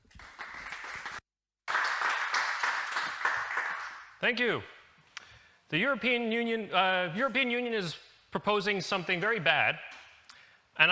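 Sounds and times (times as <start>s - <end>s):
audience applauding: 0.0s - 4.1s
speech: 4.2s - 4.8s, 5.7s - 9.9s, 10.8s - 10.9s.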